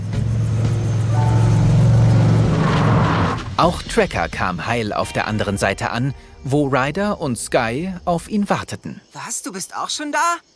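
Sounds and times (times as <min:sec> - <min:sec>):
quad bike driving slowly across a gorge: 0:00.0 - 0:03.6
speech: 0:03.6 - 0:10.5.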